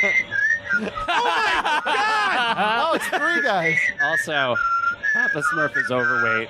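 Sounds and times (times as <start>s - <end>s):
several people whistling in a played video: 0.0s - 1.2s, 2.9s - 6.4s
laughter: 0.0s - 3.8s
speech: 3.0s - 6.4s.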